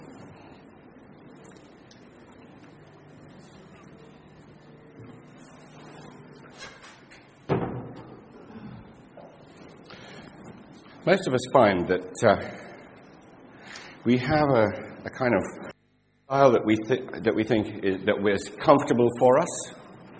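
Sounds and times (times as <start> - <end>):
door being pushed shut with a solid thud: 7.5 - 8.3
speech: 11.1 - 12.6, 14.0 - 15.7, 16.3 - 19.8.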